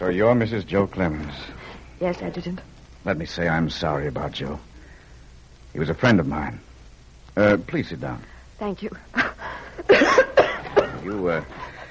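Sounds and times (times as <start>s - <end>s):
speech: 0.0s - 4.7s, 5.7s - 6.7s, 7.4s - 10.3s, 11.0s - 11.7s
laughter: 9.2s - 11.8s
harsh coughs: 9.9s - 11.1s.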